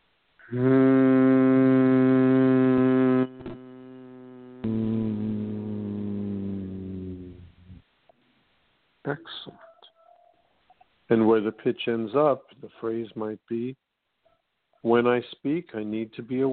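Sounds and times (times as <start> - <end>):
person humming low tones through the nose: 0.4 - 7.8
speech: 0.5 - 0.9, 11.1 - 13.9, 14.8 - 16.5.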